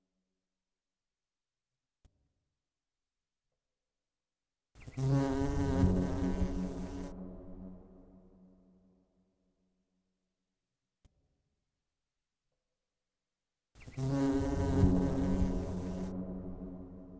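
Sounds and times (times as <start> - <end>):
bee buzzing: 5.0 - 7.2, 13.9 - 16.7.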